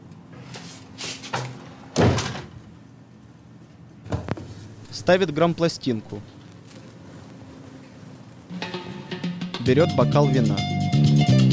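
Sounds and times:
door shutting thud: 1.4 - 2.6
speech: 5.0 - 6.4, 9.7 - 10.8.

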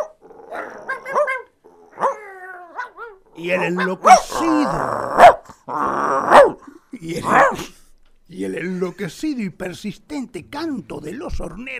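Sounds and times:
stray dogs whining and yelping: 0.0 - 4.3
stray dogs barking: 0.0 - 5.5, 6.3 - 6.6, 7.2 - 7.7
speech: 3.4 - 6.4, 7.0 - 7.7, 8.4 - 11.7.

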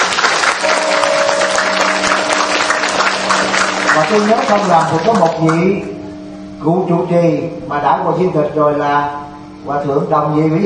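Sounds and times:
audience applause at a Buddhist temple gathering: 0.0 - 5.7
speech: 4.1 - 5.9, 6.6 - 10.6.

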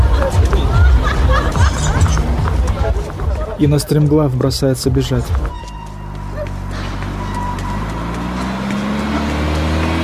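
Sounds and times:
laughter: 0.0 - 3.7, 6.2 - 6.8
car pulling up and stopping: 0.0 - 10.0
speech: 3.6 - 5.6.

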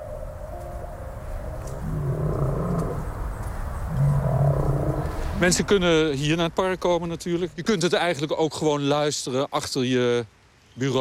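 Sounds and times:
great whales singing in the sea: 0.0 - 5.6
continuous rumbling wash of the sea: 0.0 - 10.9
speech: 5.4 - 10.9.

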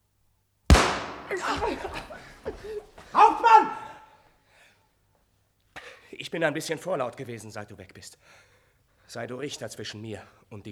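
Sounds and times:
gunshot fired by a robber captain: 0.7 - 2.3
laughter: 1.2 - 4.0
speech: 1.3 - 3.8, 6.2 - 10.7.

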